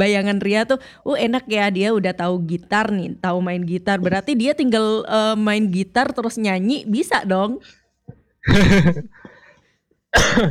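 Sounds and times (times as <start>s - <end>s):
speech: 0.0s - 7.8s, 8.4s - 9.2s, 10.1s - 10.4s
harsh raspy coughs: 8.4s - 9.4s, 10.1s - 10.4s.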